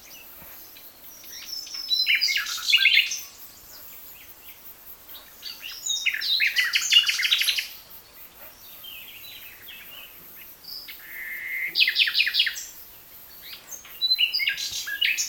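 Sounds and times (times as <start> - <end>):
common nightingale song: 0.0 - 15.2.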